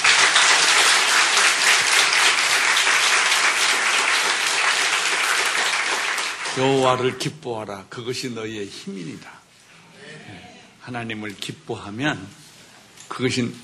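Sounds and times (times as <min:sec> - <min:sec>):
large congregation clapping: 0:00.0 - 0:07.2
speech: 0:06.6 - 0:09.4, 0:10.9 - 0:12.4, 0:13.2 - 0:13.6.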